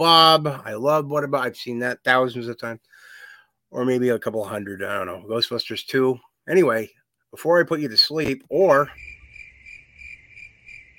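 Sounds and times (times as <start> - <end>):
speech: 0.0 - 3.1, 3.7 - 9.1
crickets chirping: 8.9 - 10.9.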